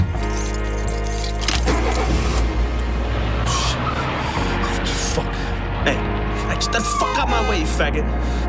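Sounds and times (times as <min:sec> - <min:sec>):
keys jangling and clinking: 0:00.1 - 0:02.2
car engine running with heavy rumble: 0:01.4 - 0:08.3.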